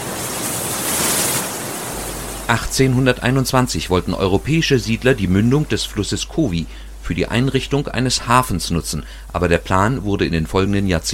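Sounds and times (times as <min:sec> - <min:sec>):
Indian Ocean surf breaking on beach: 0:00.0 - 0:04.4
speech: 0:02.5 - 0:11.1.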